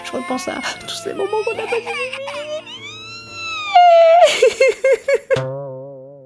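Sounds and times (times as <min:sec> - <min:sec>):
woman crying with joy: 0:00.0 - 0:02.9, 0:03.6 - 0:05.4
speech: 0:00.1 - 0:02.4, 0:04.4 - 0:05.7.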